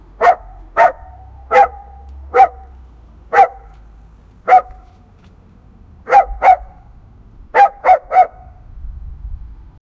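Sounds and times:
dog barking loudly: 0.1s - 3.8s, 4.4s - 5.0s, 6.0s - 6.9s, 7.5s - 8.6s.

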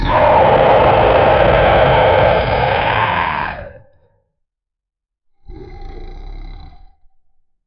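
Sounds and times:
monster booming cry: 0.1s - 3.9s.

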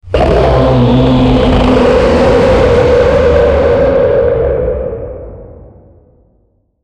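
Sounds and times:
low and deep human scream: 0.0s - 5.2s.

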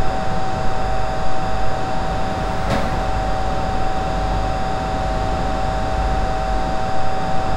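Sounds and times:
power plant structure noise: 0.1s - 7.4s.

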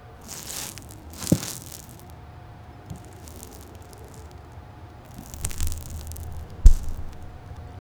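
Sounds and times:
rough sliding sound in baseball: 0.2s - 2.1s, 2.9s - 4.4s, 5.1s - 7.6s.

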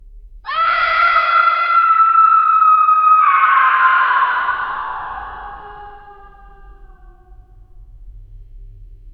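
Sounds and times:
muffled distant screams in a prison: 0.5s - 7.5s.

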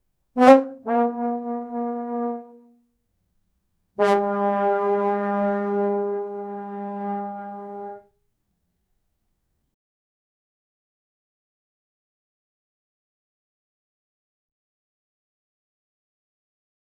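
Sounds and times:
1940s cartoon trombone: 0.4s - 2.7s, 4.0s - 8.0s.

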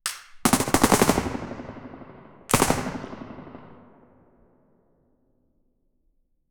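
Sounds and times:
single sp5a3 9mm gunshot: 0.5s - 3.9s.

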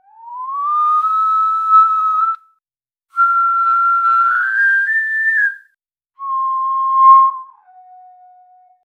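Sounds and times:
long sliding whistle: 0.2s - 2.4s, 3.2s - 5.6s, 6.2s - 8.2s.

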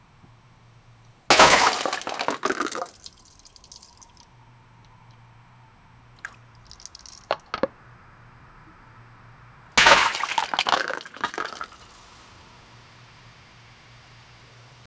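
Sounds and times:
plastic glass filled with asphalt: 1.3s - 4.3s, 6.2s - 7.8s, 9.8s - 12.0s.

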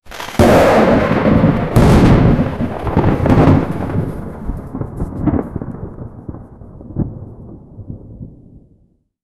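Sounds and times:
lightning: 0.1s - 8.9s.

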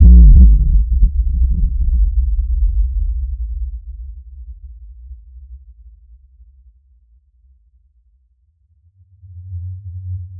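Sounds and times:
deep vibrating extra bass explosion: 0.0s - 2.4s.

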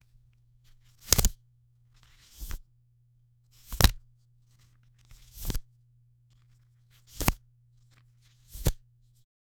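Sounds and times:
playing cards being turned over in a card game: 0.6s - 2.6s, 3.5s - 5.7s, 6.3s - 9.2s.

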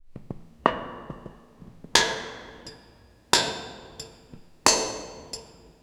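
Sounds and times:
rhythmic footsteps of boots: 0.1s - 2.1s, 4.3s - 4.8s.

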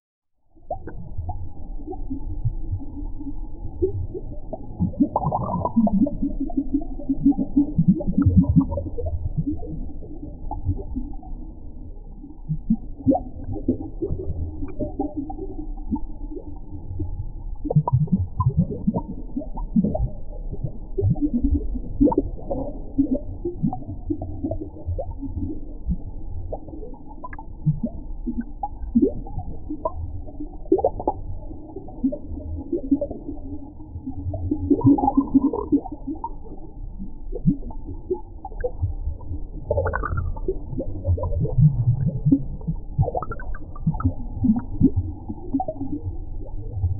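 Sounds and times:
underwater ambience: 0.4s - 46.9s.

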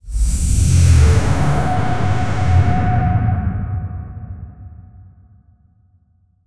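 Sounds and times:
cinematic downer effect: 0.1s - 4.5s.

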